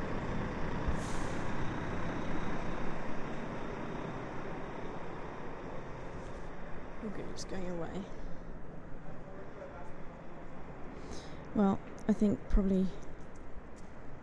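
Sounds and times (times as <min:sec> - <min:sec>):
large lorry heavy engine rumbling: 0:00.0 - 0:11.8
large lorry air brakes hissing: 0:00.9 - 0:01.7
speech: 0:07.1 - 0:08.2, 0:11.6 - 0:13.1.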